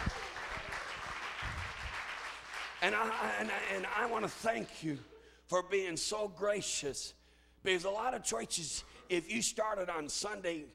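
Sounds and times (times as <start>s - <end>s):
crowd applauding: 0.0s - 4.8s
speech: 2.8s - 10.7s.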